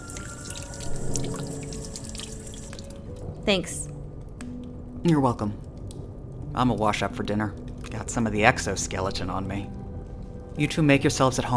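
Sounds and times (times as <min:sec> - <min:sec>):
water poured into a glass: 0:00.0 - 0:03.3
speech: 0:03.5 - 0:03.9, 0:05.0 - 0:05.6, 0:06.6 - 0:09.8, 0:10.6 - 0:11.5.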